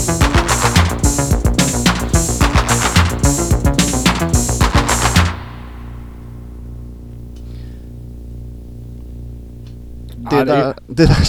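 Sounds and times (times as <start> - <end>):
upbeat Danish new wave pop song with drums and synths: 0.0 - 5.5
speech: 10.4 - 11.2.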